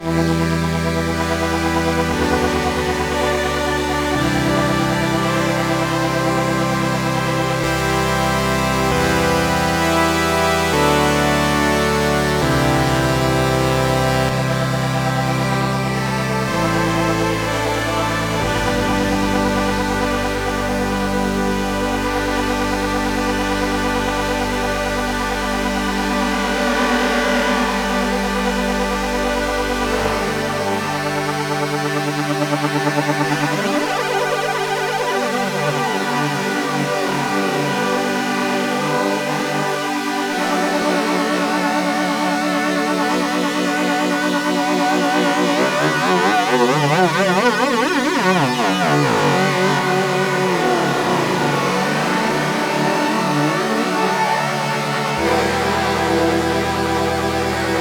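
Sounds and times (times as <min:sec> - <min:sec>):
synthesizers with chorus effect: 0:00.0 - 0:57.7.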